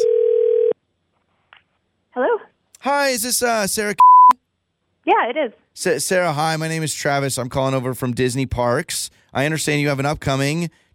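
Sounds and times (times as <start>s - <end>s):
telephone dial tone as a call connects: 0.0s - 0.8s
speech: 2.2s - 4.1s, 5.0s - 10.8s.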